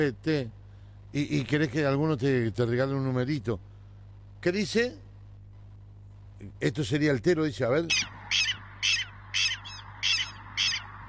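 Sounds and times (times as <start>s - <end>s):
speech: 0.0s - 3.7s, 4.4s - 5.0s, 6.4s - 9.0s
low constant hum: 0.0s - 11.0s
small bird calling: 7.9s - 11.0s.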